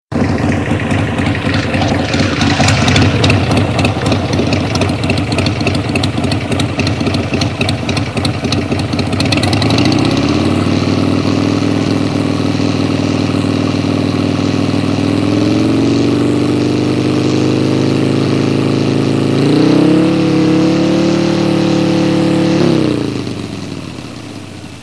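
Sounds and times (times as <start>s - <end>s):
motorcycle exhaust: 0.1s - 24.8s.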